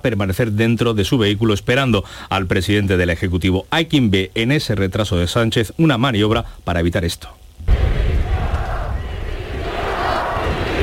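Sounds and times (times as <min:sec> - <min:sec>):
speech: 0:00.0 - 0:08.0
large crowd booing at an armed forces parade: 0:07.7 - 0:10.8.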